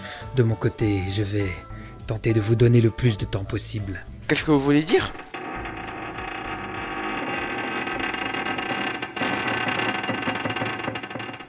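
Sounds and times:
speech: 0:00.4 - 0:05.3
distant metallic creaking along spaceship walls: 0:05.0 - 0:11.4.

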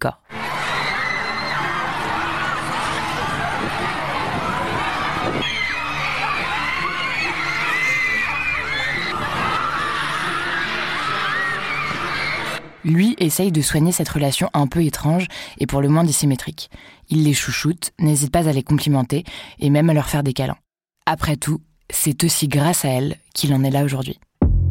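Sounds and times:
speech: 0:00.0 - 0:00.2, 0:12.8 - 0:24.3
crowd of teenage girl fans screaming: 0:00.3 - 0:12.8.

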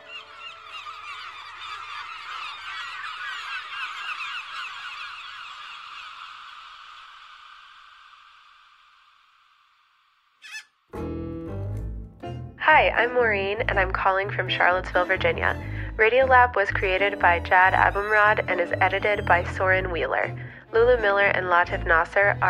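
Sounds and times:
crowd of seagulls squawking: 0:00.0 - 0:07.3, 0:10.4 - 0:10.7, 0:16.8 - 0:22.4
speech: 0:12.7 - 0:22.4.

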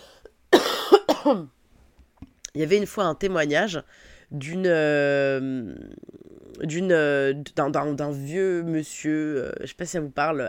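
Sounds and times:
person coughing: 0:00.5 - 0:01.5
speech: 0:01.2 - 0:01.6, 0:02.6 - 0:10.4.

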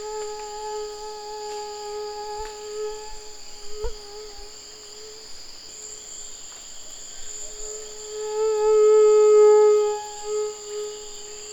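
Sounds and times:
tropical mosquito buzzing on a forest trail in French Guiana: 0:00.0 - 0:05.3, 0:07.6 - 0:11.5
high-pitched insect chorus on a forest trail in French Guiana: 0:00.0 - 0:11.5.

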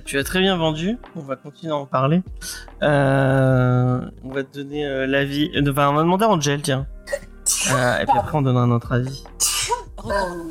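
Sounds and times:
speech: 0:00.1 - 0:09.4, 0:10.0 - 0:10.4
person laughing: 0:07.6 - 0:08.4
person sneezing: 0:09.4 - 0:09.9.

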